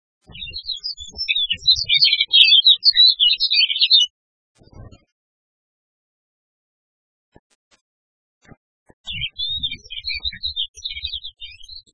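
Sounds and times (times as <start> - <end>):
Alpine accentor: 0.2 - 4.1, 9.0 - 11.9.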